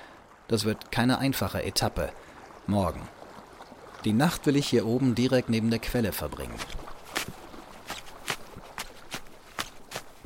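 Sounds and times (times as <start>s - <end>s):
speech: 0.5s - 3.2s, 4.0s - 7.4s
snowshoes stamping snow flat: 6.5s - 10.2s.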